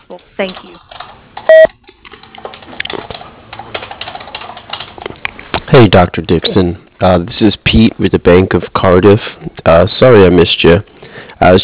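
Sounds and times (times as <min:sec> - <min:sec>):
speech: 0:00.1 - 0:01.0, 0:05.7 - 0:11.6
electronic answering machine voicemail beep: 0:01.5 - 0:01.7.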